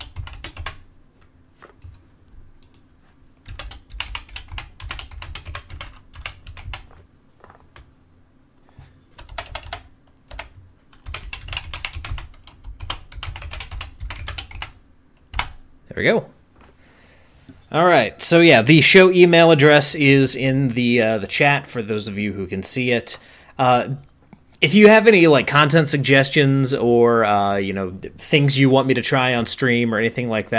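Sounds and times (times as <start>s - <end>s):
rapid clacky keystrokes on a mechanical keyboard: 0.0s - 0.8s, 3.4s - 7.0s, 9.2s - 15.6s
speech: 16.0s - 16.3s, 17.7s - 30.5s.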